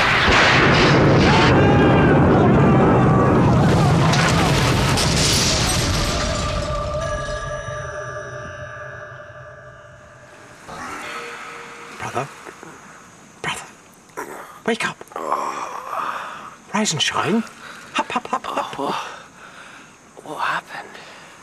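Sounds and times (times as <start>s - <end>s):
lightning strike and boat exploding: 0.0s - 7.5s
sustained tones and hiss: 5.0s - 21.4s
speech: 16.8s - 17.6s.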